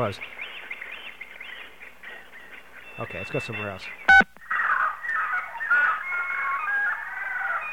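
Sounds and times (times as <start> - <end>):
speech: 0.0 - 0.4, 3.0 - 4.0
tropical bird calling in high warbling chirps: 0.0 - 7.7.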